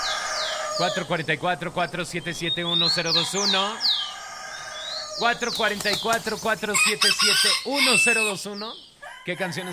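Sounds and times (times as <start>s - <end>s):
rooster crowing in harsh squawks: 0.0s - 1.1s, 3.1s - 5.2s, 6.7s - 8.4s, 9.0s - 9.7s
speech: 0.8s - 4.0s, 5.2s - 9.7s.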